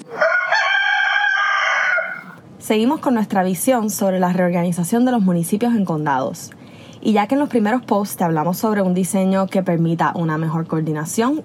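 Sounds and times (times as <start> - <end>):
rooster crowing: 0.0 - 2.4
speech: 2.7 - 11.4.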